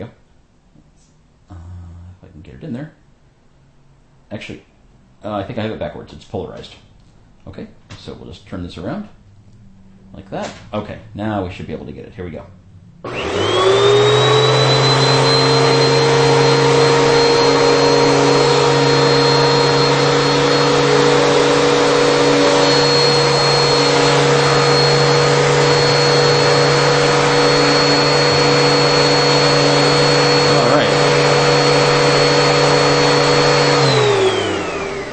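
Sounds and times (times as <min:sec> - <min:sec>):
speech: 0:02.4 - 0:03.0, 0:04.3 - 0:09.2, 0:10.1 - 0:14.3
canister vacuum cleaner power nozzle motor running with tonal whine: 0:13.0 - 0:35.1.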